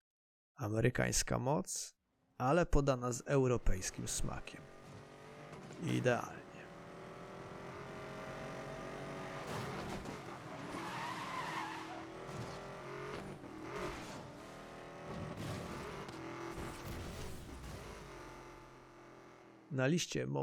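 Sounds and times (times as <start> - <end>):
speech: 0.6 - 4.8, 5.8 - 6.4, 19.7 - 20.4
Chevrolet Corvette C6 ZR1 engine roaring in a racing video game: 3.4 - 19.7
Chevrolet Corvette C6 ZR1 tires screeching while skidding in a racing video game: 3.8 - 19.7.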